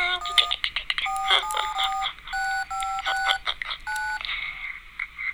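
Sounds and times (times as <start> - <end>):
telephone keypad tones as a number is dialed: 0.2 - 4.3.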